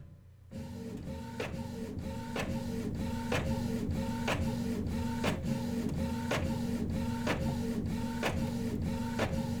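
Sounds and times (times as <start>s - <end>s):
inkjet printer starting up: 0.5s - 9.5s.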